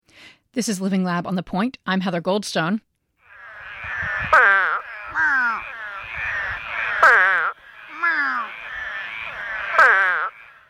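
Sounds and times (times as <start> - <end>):
speech: 0.5 - 2.9
eastern spadefoot toad giving low moaning calls: 3.2 - 10.6.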